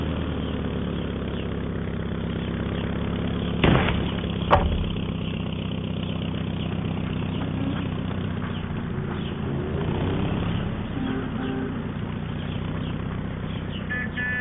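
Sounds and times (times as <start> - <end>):
old propeller plane engine rumbling while taxiing onto a busy boulevard: 0.1 - 14.3
sharp knocks: 3.6 - 5.4.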